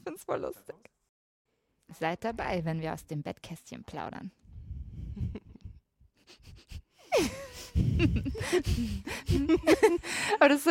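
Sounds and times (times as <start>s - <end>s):
speech: 0.1s - 1.0s, 1.9s - 4.4s, 8.0s - 10.7s
heavy labored breathing through the nose with sniffing inhales and wheezy exhales: 6.2s - 10.4s.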